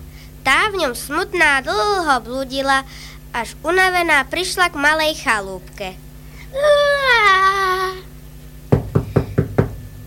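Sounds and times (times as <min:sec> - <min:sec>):
speech: 0:00.7 - 0:07.5
knocking on a wooden cottage door: 0:08.7 - 0:09.8.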